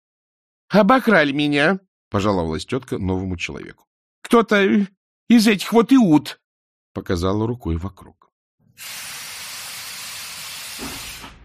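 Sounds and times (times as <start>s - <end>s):
speech: 0.7s - 6.4s, 7.0s - 8.2s, 8.8s - 9.2s, 10.8s - 11.0s
steam train hissing steam: 8.8s - 11.4s.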